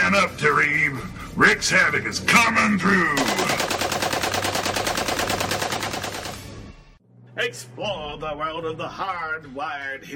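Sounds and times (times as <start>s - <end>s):
speech: 0.1s - 3.7s, 7.4s - 10.1s
heavy .50 caliber machine gun firing from a roof turret: 3.2s - 6.7s.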